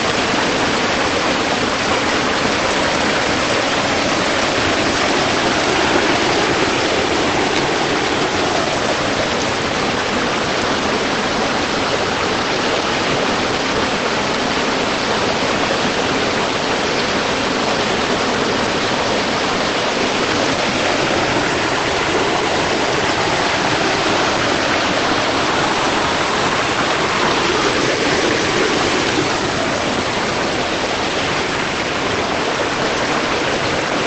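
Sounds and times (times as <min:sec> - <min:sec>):
small stream near Salamanca Spain rushing and splashing: 0:00.0 - 0:34.0.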